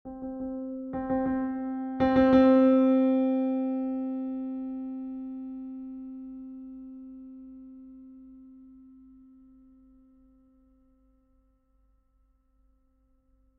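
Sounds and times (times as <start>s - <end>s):
digital piano notes played soft and medium: 0.1s - 8.4s.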